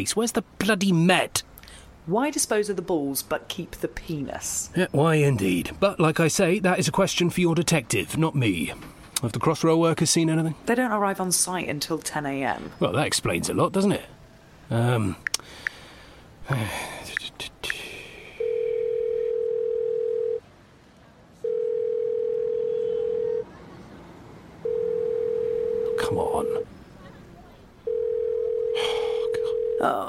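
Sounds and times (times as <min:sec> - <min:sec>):
speech: 0:00.0 - 0:15.6, 0:16.5 - 0:17.5
breathing: 0:01.6 - 0:02.0, 0:15.4 - 0:17.1, 0:17.7 - 0:18.6
unanswered telephone ringing tone: 0:18.4 - 0:20.4, 0:21.4 - 0:23.4, 0:24.6 - 0:26.6, 0:27.8 - 0:30.0
person muttering: 0:28.7 - 0:30.0.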